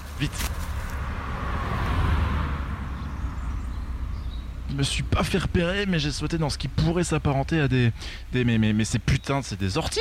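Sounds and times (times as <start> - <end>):
speech: 0.2 - 0.6, 4.8 - 9.9
car passing by with engine rumble and tyre noise: 0.4 - 4.4.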